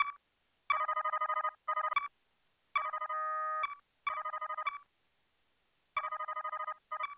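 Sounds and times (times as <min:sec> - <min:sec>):
looping beep: 0:00.0 - 0:02.1, 0:02.8 - 0:04.8, 0:06.0 - 0:07.1.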